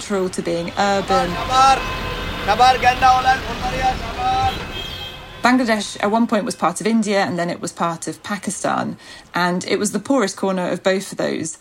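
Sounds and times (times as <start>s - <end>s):
speech: 0.0s - 4.7s, 5.4s - 11.6s
vehicle horn beeps and honks in Bangladesh city traffic: 0.0s - 6.8s
rumble of rickshaw, car and bus engines in Bangladesh city traffic: 0.0s - 10.6s.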